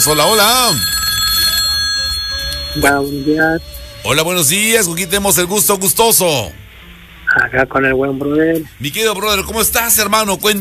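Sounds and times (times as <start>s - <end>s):
speech: 0.0s - 1.0s, 2.8s - 6.6s, 7.3s - 10.5s
telephone ringing for an incoming call: 0.0s - 4.2s
low hum: 0.0s - 10.5s.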